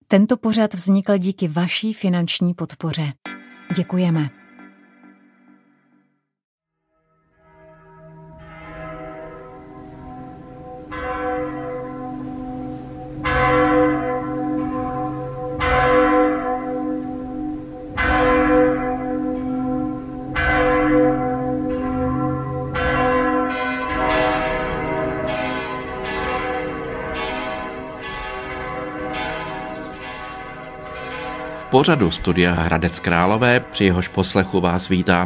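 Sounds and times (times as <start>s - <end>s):
speech: 0.1s - 4.4s, 31.8s - 35.2s
church bells ringing: 7.2s - 35.2s.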